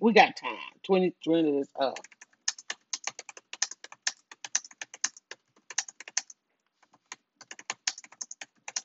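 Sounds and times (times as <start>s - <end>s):
speech: 0.0s - 2.2s
rapid clacky typing on a computer keyboard: 1.9s - 8.8s.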